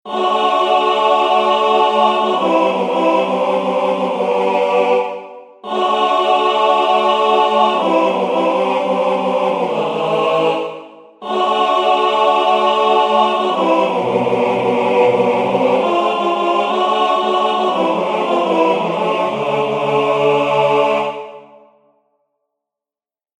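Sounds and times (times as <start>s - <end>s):
MIDI men's choir intro: 0.1s - 21.8s.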